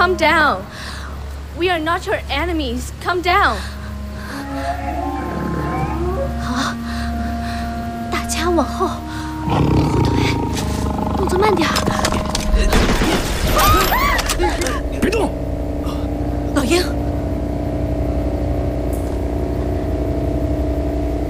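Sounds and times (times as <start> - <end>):
speech: 0.0 - 0.9, 1.6 - 3.8, 4.6 - 5.1, 8.5 - 9.7, 11.2 - 15.4, 16.7 - 17.0
low sustained drone: 0.0 - 21.2
steady low mechanical hum: 0.0 - 21.2
startled people gasping: 3.6 - 7.8
tiger roaring with deep rumbling growls: 3.9 - 6.5, 9.4 - 12.5
agitated human voices: 4.2 - 6.7, 9.4 - 12.7.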